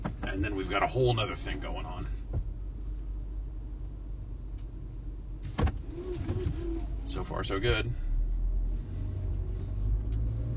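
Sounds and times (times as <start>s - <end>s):
car engine rumbling while driving the wrong way down an alley: 0.0s - 10.5s
speech: 0.4s - 2.2s, 7.1s - 8.0s.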